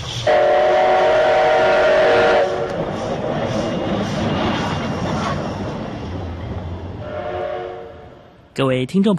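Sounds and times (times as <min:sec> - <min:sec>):
steam train wheels rumbling and clattering on rails: 0:00.0 - 0:08.3
steam train whistle blast: 0:00.2 - 0:02.8, 0:07.0 - 0:08.1
speech: 0:08.6 - 0:09.1.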